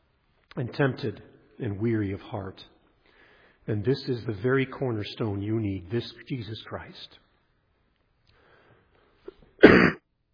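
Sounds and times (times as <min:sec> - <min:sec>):
speech: 0:00.6 - 0:02.8, 0:03.7 - 0:07.2
throat clearing: 0:09.3 - 0:10.0.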